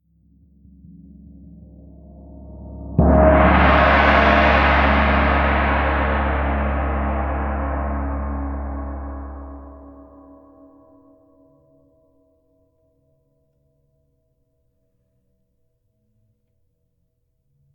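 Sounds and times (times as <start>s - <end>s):
Chinese gong: 2.5s - 10.4s.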